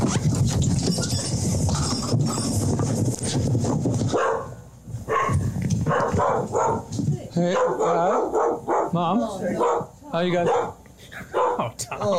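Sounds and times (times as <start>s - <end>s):
rustling and shuffling: 0.0s - 7.4s
dog barking: 4.1s - 11.7s
speech: 7.4s - 10.8s, 11.6s - 12.1s.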